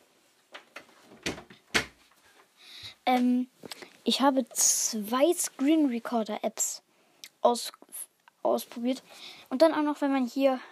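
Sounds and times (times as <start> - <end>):
door pushed shut with knocking thuds and rattles: 1.2 - 2.0
speech: 3.1 - 6.8, 7.4 - 7.8, 8.4 - 10.7.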